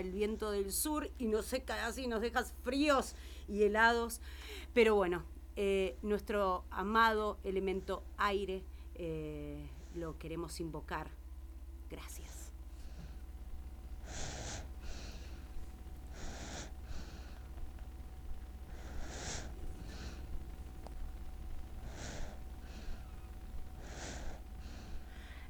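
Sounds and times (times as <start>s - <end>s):
speech: 0.0s - 11.2s, 11.9s - 12.4s
steady low hiss: 0.0s - 25.4s
baby breathing softly with snuffling inhales and exhales: 14.0s - 17.7s, 18.7s - 21.0s, 21.8s - 25.4s.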